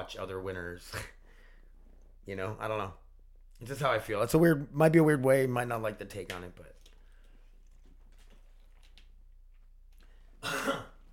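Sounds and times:
speech: 0.1 - 1.2, 2.3 - 3.0, 3.6 - 6.8
person with an irritated throat clearing throat: 10.4 - 11.1.

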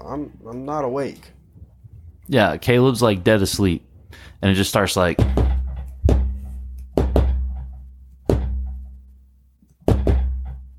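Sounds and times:
speech: 0.1 - 1.4, 2.3 - 5.4
heavy hollow knocks on a surface: 5.0 - 8.8, 9.8 - 10.6.

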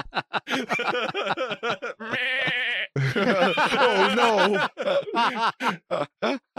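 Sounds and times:
laughter: 0.0 - 6.5
human voice imitating a goat bleating: 2.0 - 5.2
speech: 3.2 - 6.1.

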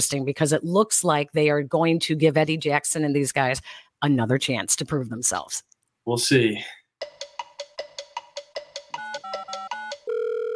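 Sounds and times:
speech: 0.0 - 6.8
touch-tone keypad beeps as a phone number is dialed: 9.0 - 10.5.

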